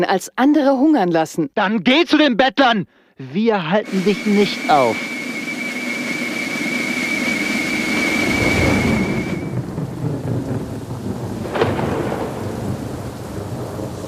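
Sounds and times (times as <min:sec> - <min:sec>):
speech: 0:00.0 - 0:05.1
steady rain hissing in a thunderstorm: 0:03.8 - 0:14.0
thin faint whistling tone: 0:03.9 - 0:09.6
low thunder rumbling: 0:04.2 - 0:14.0
sharper crack of thunder: 0:08.4 - 0:14.0.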